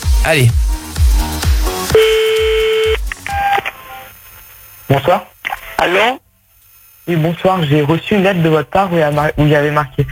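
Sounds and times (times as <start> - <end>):
music: 0.0 - 4.2
speech: 0.2 - 0.8, 4.9 - 6.2, 7.1 - 10.1
long steady electronic dial tone: 1.9 - 3.6
short telephone dial beeps: 1.9 - 3.6.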